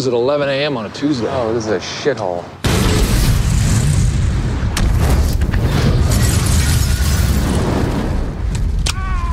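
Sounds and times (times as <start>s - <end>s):
speech: 0.0s - 2.6s
loud explosion in a film scene: 2.6s - 8.5s
debris falling: 2.6s - 8.8s.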